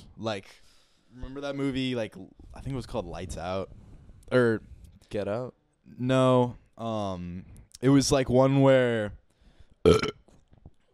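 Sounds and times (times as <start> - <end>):
speech: 0.2 - 9.2, 9.8 - 10.2
loud burp with a rough throaty buzz: 9.8 - 10.2.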